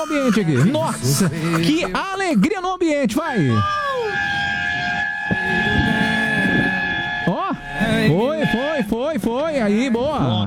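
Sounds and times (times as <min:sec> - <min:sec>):
speech: 0:00.0 - 0:04.3, 0:07.9 - 0:10.4
vehicle horn blaring on the Marginal Tietê: 0:04.1 - 0:08.9.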